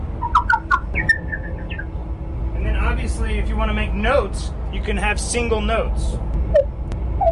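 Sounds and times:
faint low rumble: 0.0 - 7.2
Indiana bat chirps: 0.2 - 1.9
speech: 3.1 - 6.7.

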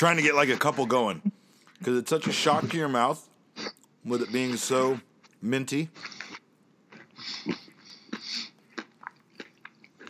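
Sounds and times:
speech: 0.0 - 3.3, 4.0 - 6.2, 7.2 - 7.6
chewing a crunchy roasted almond: 3.7 - 10.0.

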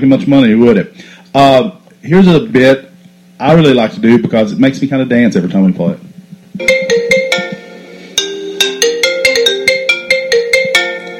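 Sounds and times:
speech: 0.0 - 7.2
telephone with a bright melodic electronic ringtone: 6.6 - 11.1.

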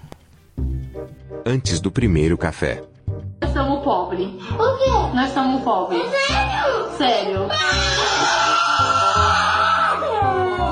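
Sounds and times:
speech: 1.0 - 2.9, 3.6 - 8.5
person wailing and sobbing: 7.5 - 10.7.

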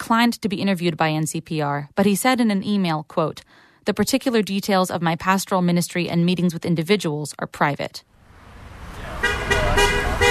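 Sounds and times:
speech: 0.1 - 8.2
low traffic rumble: 8.1 - 10.2
car horns honking as vehicles pass: 8.6 - 10.2.

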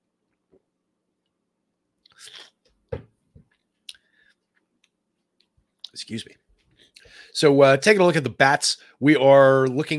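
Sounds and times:
sipping a drink: 2.0 - 2.7
speech: 6.0 - 6.4, 7.4 - 9.9.

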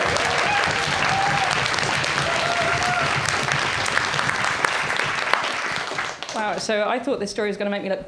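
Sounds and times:
whoops and cheers: 0.0 - 3.5
audience applause welcoming the next speaker: 0.0 - 6.6
speech: 6.6 - 8.0.

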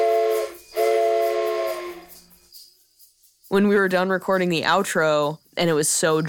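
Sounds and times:
hiss: 0.0 - 2.5
toy train whistle blowing a breathy multi-tone chord: 0.0 - 2.7
speech: 3.6 - 6.2.

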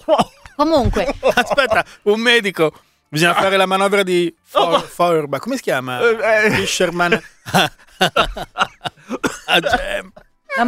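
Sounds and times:
laughter: 0.0 - 2.0, 6.0 - 10.6
speech: 0.1 - 10.6
person coughing after choking on a mint: 9.0 - 10.6.

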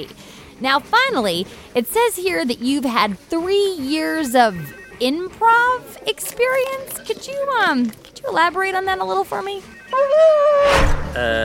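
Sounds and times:
speech: 0.0 - 11.4
dog whimpering: 9.6 - 10.8
dog howling: 9.8 - 10.8.

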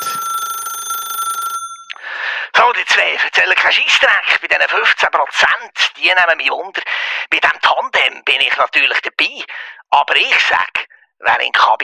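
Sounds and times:
telephone ringing with a trilling bell tone: 0.0 - 2.7
speech: 2.8 - 11.8.

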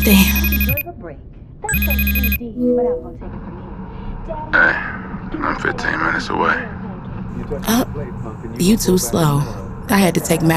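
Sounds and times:
mobile phone buzzing with an incoming call: 0.0 - 0.8, 1.7 - 2.4
speech: 0.0 - 3.6, 4.3 - 10.5.

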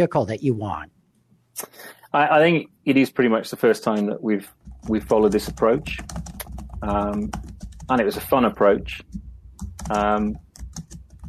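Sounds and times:
speech: 0.0 - 1.0, 1.6 - 9.2, 9.8 - 10.9
typing on a computer keyboard: 4.5 - 11.2.

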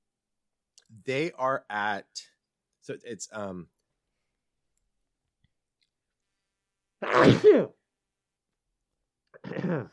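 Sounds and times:
speech: 1.0 - 3.8, 7.0 - 7.8, 9.5 - 9.9
person sneezing: 7.0 - 7.8, 9.4 - 9.9.

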